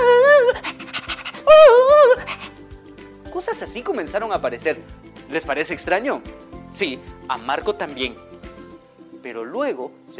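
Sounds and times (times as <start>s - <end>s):
person imitating a dog panting: 0.4s - 2.6s
speech: 3.7s - 8.4s, 9.2s - 10.1s.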